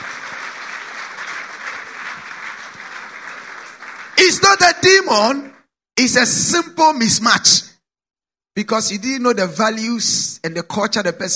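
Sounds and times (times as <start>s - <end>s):
crowd applauding: 0.0s - 5.5s
speech: 4.3s - 7.7s, 8.6s - 11.3s.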